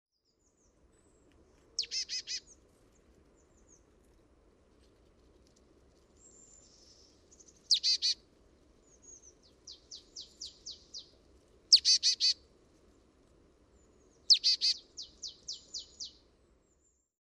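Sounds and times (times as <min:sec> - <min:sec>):
marsh tit Poecile palustris calls: 0:01.8 - 0:02.4, 0:07.7 - 0:08.2, 0:11.7 - 0:12.4, 0:14.3 - 0:14.8.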